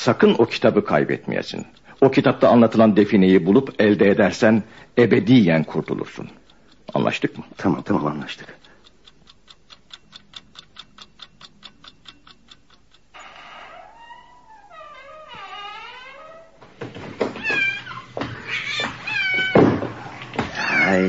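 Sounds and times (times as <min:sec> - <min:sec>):
speech: 0:00.0 - 0:08.6
clock ticking: 0:00.0 - 0:14.2
cat meowing and caterwauling: 0:17.4 - 0:21.0.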